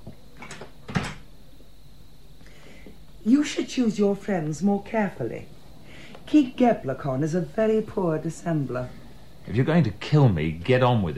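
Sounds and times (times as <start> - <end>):
door pushed shut with a soft thud: 0.4 - 1.2
speech: 3.2 - 5.6, 6.3 - 11.1.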